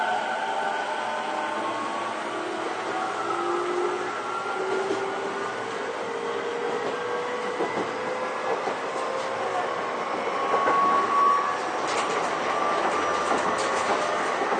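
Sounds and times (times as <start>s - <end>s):
commuter train carriage running rumble: 0.0s - 14.5s
sharp clacks from the track: 6.6s - 9.4s, 11.8s - 14.5s.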